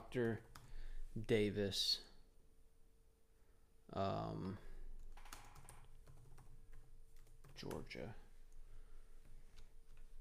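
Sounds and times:
speech: 0:00.1 - 0:00.5, 0:01.2 - 0:02.1, 0:03.9 - 0:04.7, 0:07.6 - 0:08.2
typing on a computer keyboard: 0:00.2 - 0:00.7, 0:05.0 - 0:08.0.

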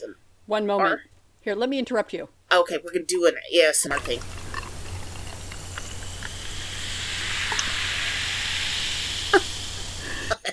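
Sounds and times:
speech: 0:00.0 - 0:04.4
fizzy drink bubbling and fizzing for an ASMR recording: 0:03.9 - 0:10.4.

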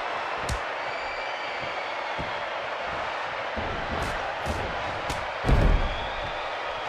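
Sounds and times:
crowd roaring: 0:00.0 - 0:06.8
wrestler's scoop slam onto ring mat: 0:05.4 - 0:06.1.

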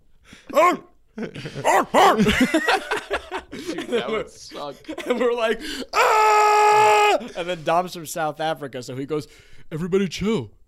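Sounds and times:
person imitating a loose dog barking: 0:00.5 - 0:01.0, 0:01.6 - 0:02.3
speech: 0:00.6 - 0:10.6
laughter: 0:01.2 - 0:05.7.

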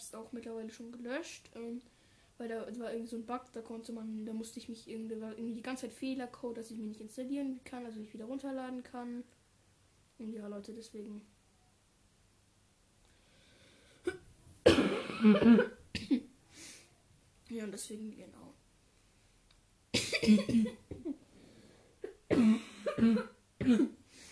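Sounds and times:
speech: 0:00.1 - 0:09.4, 0:10.2 - 0:11.3, 0:15.2 - 0:16.2, 0:17.5 - 0:18.5, 0:20.2 - 0:20.8, 0:22.4 - 0:24.0
harsh coughing in bursts: 0:14.0 - 0:16.3, 0:20.0 - 0:21.2, 0:22.0 - 0:24.0.

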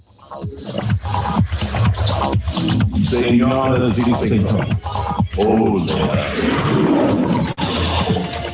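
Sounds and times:
speech: 0:00.3 - 0:01.3, 0:02.6 - 0:07.6
lion roaring: 0:05.4 - 0:08.3.

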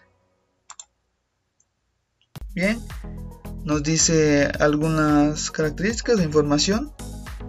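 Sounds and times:
computer mouse clicks in a software installation program: 0:00.7 - 0:00.9
speech: 0:02.6 - 0:07.0.

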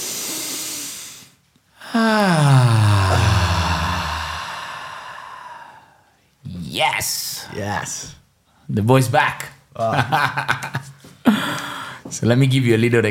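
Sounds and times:
deep breath in: 0:00.0 - 0:06.2, 0:11.2 - 0:12.1
long voiced sigh: 0:01.8 - 0:06.2
speech: 0:02.0 - 0:02.5, 0:06.8 - 0:10.9, 0:12.2 - 0:13.0.

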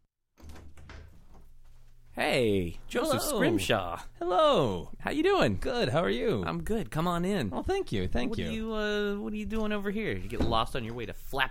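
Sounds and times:
door swinging open: 0:00.4 - 0:01.6
speech: 0:02.2 - 0:11.4.

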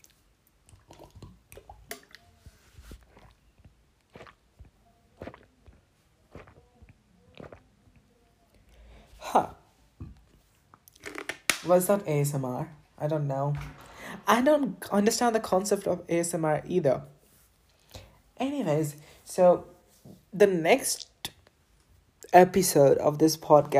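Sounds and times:
person drinking water, gulping and swallowing: 0:00.0 - 0:02.3, 0:02.9 - 0:08.0
soft breaths: 0:02.2 - 0:10.0, 0:17.2 - 0:18.4
speech: 0:09.4 - 0:09.6, 0:11.7 - 0:17.2, 0:18.6 - 0:19.7, 0:20.4 - 0:21.1, 0:22.3 - 0:23.7.

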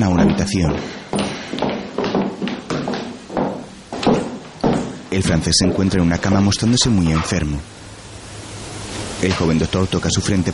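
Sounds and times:
speech: 0:00.0 - 0:01.6, 0:05.1 - 0:07.8, 0:09.2 - 0:10.5
footsteps walking down a corridor at a worried pace: 0:00.0 - 0:07.0.

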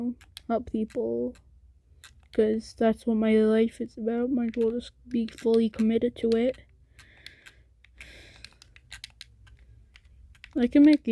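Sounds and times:
speech: 0:00.0 - 0:01.5, 0:02.3 - 0:06.7, 0:10.6 - 0:11.1
computer keyboard keys clicking: 0:00.1 - 0:01.4, 0:04.5 - 0:11.1.

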